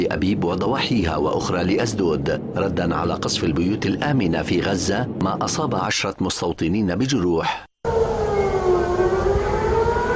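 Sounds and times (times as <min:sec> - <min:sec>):
speech: 0:00.0 - 0:07.7
air raid warning sirens wailing during a rocket attack: 0:07.8 - 0:10.1.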